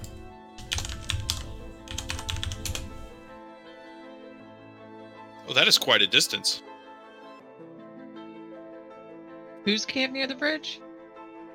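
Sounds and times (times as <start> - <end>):
typing on a computer keyboard: 0.0 - 3.1
speech: 5.5 - 6.7, 9.7 - 10.8.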